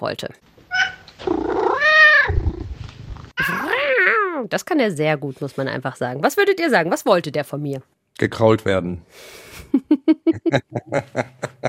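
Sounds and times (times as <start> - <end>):
speech: 0.0 - 0.8, 4.4 - 11.6
male house cat meowing: 0.7 - 2.4
laughter: 9.7 - 11.6.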